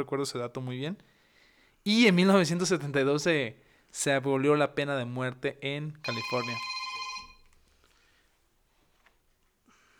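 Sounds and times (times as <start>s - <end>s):
speech: 0.0s - 1.2s, 1.8s - 6.7s
phone ringing: 6.0s - 7.6s.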